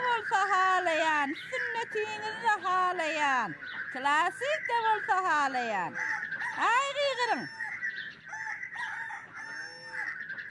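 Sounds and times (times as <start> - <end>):
speech: 0.3 - 7.6
rooster crowing: 5.9 - 10.2.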